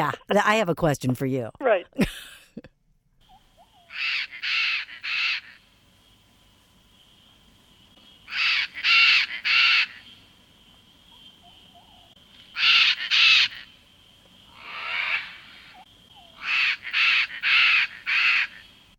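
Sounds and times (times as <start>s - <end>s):
speech: 0.0s - 2.7s
Chestnut-fronted Macaw squawks: 3.2s - 5.6s, 8.3s - 10.1s, 11.4s - 13.7s, 14.5s - 18.7s.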